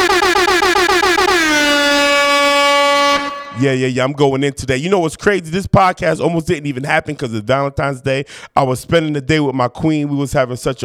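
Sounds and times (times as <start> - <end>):
loud air horn blasts and sustained honk: 0.0 - 3.9
speech: 3.6 - 10.8.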